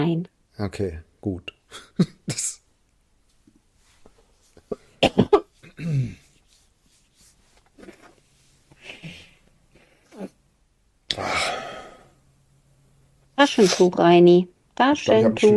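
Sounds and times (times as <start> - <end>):
speech: 0.0 - 2.6, 5.0 - 6.2, 13.4 - 15.5
throat clearing: 4.6 - 6.2
sharp harsh coughs: 4.7 - 6.2
breathy exhales: 11.1 - 12.2.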